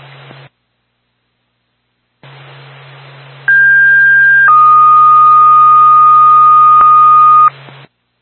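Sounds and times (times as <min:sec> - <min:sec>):
two-tone fire dispatch page over radio: 0:03.5 - 0:07.5.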